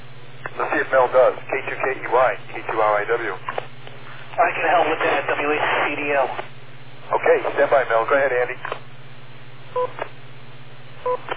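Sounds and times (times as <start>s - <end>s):
radio static bursts: 0.5s - 3.4s, 4.4s - 6.5s, 7.1s - 8.6s
speech: 0.9s - 3.6s, 4.4s - 6.5s, 7.2s - 8.8s, 9.7s - 10.0s, 11.0s - 11.3s.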